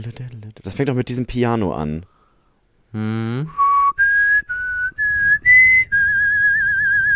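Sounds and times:
speech: 0.0s - 2.1s, 2.9s - 3.6s
person whistling a sci-fi TV theme melody: 3.4s - 7.1s.

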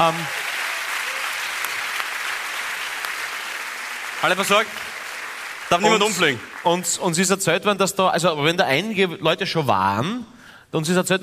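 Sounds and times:
speech: 0.0s - 0.4s, 4.2s - 5.0s, 5.7s - 11.2s
audience applauding near Melk Abbey: 0.0s - 7.3s
brief voice: 5.7s - 6.4s.

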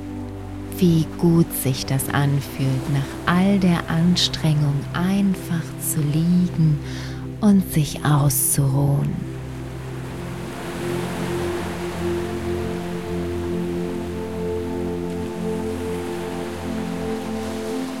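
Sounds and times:
ocean surf rushing: 0.0s - 7.5s, 8.4s - 17.9s
low sustained tonal hum: 0.0s - 17.9s
speech: 0.8s - 9.3s.

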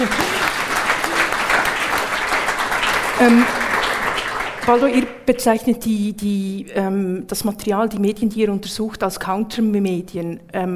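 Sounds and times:
audience applause: 0.0s - 5.1s
speech: 3.2s - 3.6s, 4.7s - 10.7s.

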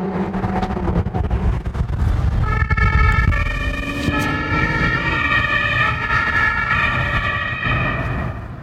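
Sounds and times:
traffic rumble: 0.0s - 8.6s
police siren wailing in pursuit of a car on city streets: 2.4s - 8.6s.

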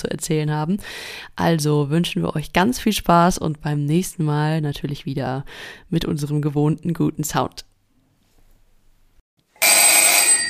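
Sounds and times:
speech: 0.1s - 7.7s
electric doorbell ringing as guests arrive: 9.6s - 10.4s.

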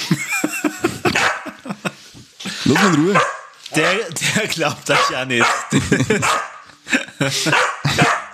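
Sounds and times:
laughter: 0.0s - 3.2s, 3.8s - 8.3s
dog barking: 1.1s - 1.6s, 2.7s - 4.1s, 4.9s - 6.7s, 7.5s - 8.3s
speech: 2.7s - 6.5s, 7.2s - 7.7s.

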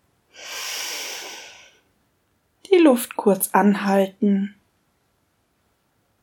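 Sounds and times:
deep inhalation through the nose during a guided breathing exercise: 0.3s - 1.9s
speech: 2.8s - 4.6s.

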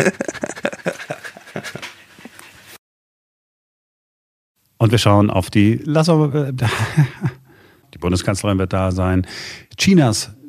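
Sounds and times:
speech: 0.0s - 0.6s, 4.8s - 7.4s, 8.0s - 10.4s
laughter: 0.0s - 2.0s, 6.6s - 7.4s
dog panting rapidly: 0.0s - 2.8s.

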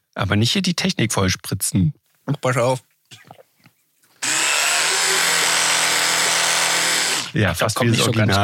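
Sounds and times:
speech: 0.2s - 3.3s, 7.3s - 8.4s
electric toothbrush buzzing while someone brushes teeth: 4.2s - 7.4s.

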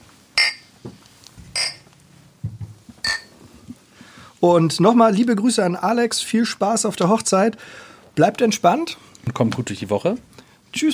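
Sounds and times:
bright glasses clinking in a toast: 0.4s - 0.7s, 1.5s - 1.9s, 3.0s - 3.4s
thumps: 0.4s - 3.3s
speech: 4.4s - 10.9s.

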